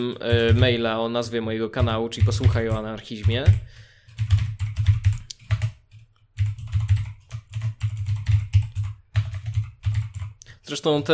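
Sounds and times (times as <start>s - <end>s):
typing an email address and password on a computer keyboard: 0.0s - 0.9s, 1.8s - 10.4s
speech: 0.0s - 4.4s, 10.7s - 11.1s.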